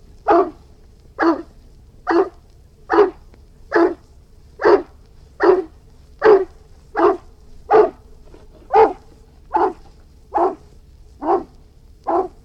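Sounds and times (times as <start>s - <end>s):
Irish Wolfhound barking: 0.2s - 0.6s, 1.2s - 1.5s, 2.1s - 4.0s, 4.6s - 8.1s, 8.7s - 12.4s.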